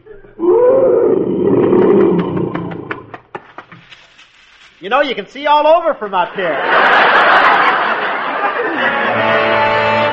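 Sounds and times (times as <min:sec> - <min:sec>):
huge lion roaring and grunting: 0:00.4 - 0:03.2
speech: 0:04.8 - 0:07.4
laughter: 0:06.2 - 0:09.8.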